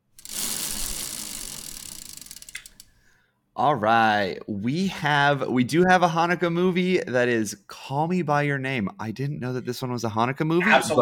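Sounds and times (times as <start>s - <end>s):
spun wheel whirring: 0.1s - 2.9s
speech: 3.6s - 11.0s.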